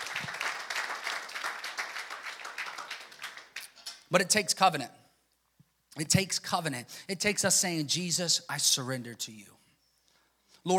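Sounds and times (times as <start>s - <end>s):
crowd applauding in a reverberant room: 0.0s - 3.8s
speech: 4.1s - 5.0s, 6.0s - 9.6s.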